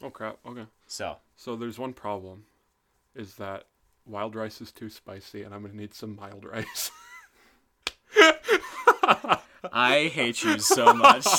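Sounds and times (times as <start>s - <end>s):
speech: 0.0s - 2.5s, 3.2s - 7.0s, 8.2s - 11.3s
hand slapping against skin: 7.8s - 8.1s
laughter: 8.2s - 9.6s, 10.3s - 11.3s.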